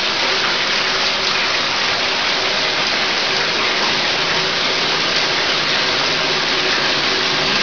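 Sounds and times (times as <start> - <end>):
pouring water: 0.0 - 7.6.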